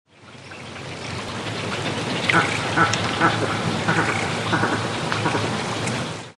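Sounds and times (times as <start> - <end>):
agami heron calling: 1.5 - 5.5.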